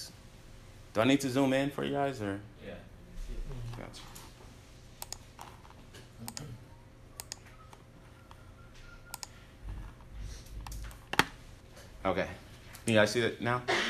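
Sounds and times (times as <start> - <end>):
speech: 1.0 - 2.9, 12.0 - 13.8
computer keyboard typing as a spreadsheet formula is entered: 5.0 - 6.5, 7.2 - 11.3.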